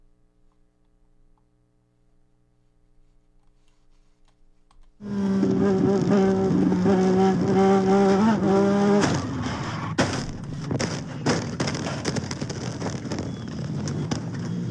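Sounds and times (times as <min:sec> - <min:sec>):
race car engine wailing at high pitch: 0:05.0 - 0:14.6
sharp impacts: 0:08.1 - 0:14.5
race car crashing into a wall along the race course: 0:08.8 - 0:14.0
scraping and clattering debris: 0:09.0 - 0:14.2.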